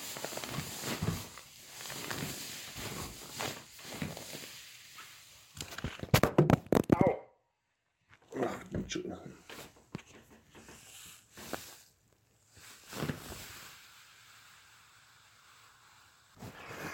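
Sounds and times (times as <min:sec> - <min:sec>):
waterproof plastic mattress cover crinkling as someone gets up: 0:00.0 - 0:06.9, 0:09.5 - 0:15.6
person speaking: 0:08.2 - 0:09.5.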